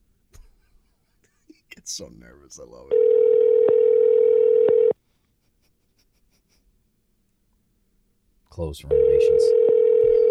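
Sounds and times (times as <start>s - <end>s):
speech: 1.9s - 3.8s, 8.6s - 9.8s
electronic telephone tone during outgoing phone call: 2.9s - 5.0s, 8.9s - 10.2s.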